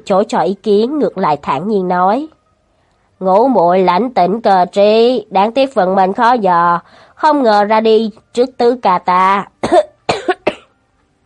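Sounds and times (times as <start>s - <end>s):
speech: 0.0s - 2.4s, 3.2s - 9.9s
man coughing: 9.6s - 10.7s.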